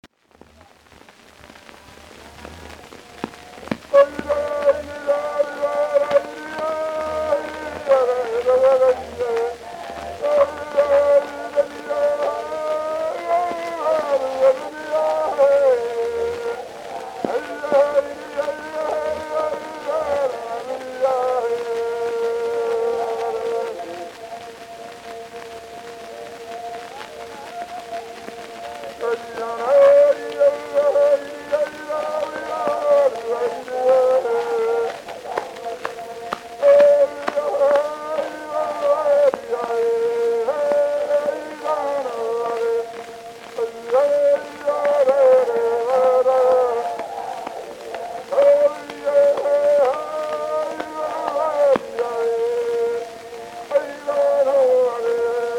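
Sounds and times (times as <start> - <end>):
Tahitian chorus singing on Edison Blue Amberol cylinder: 1.8 - 55.5.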